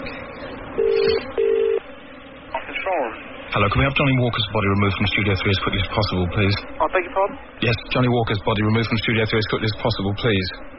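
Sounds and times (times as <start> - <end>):
faint hum: 0.0 - 10.7
telephone being dialled with two steady electronic tones: 0.8 - 1.8
speech: 3.6 - 10.7.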